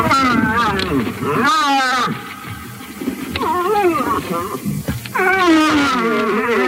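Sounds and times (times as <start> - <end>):
bull moose rutting call with moaning hoots: 0.0 - 6.6.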